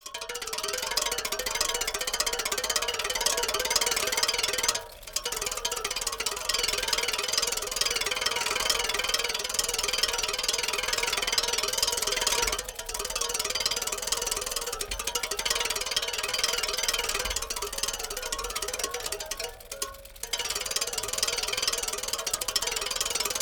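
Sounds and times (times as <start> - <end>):
bicycle wheel with broken spoke spinning at medium speed: 0.0 - 23.4.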